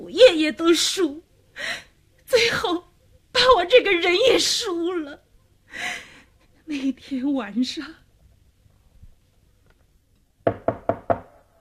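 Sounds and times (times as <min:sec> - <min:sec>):
speech: 0:00.1 - 0:06.0, 0:06.7 - 0:08.0
knocking on a door at night: 0:10.4 - 0:11.4.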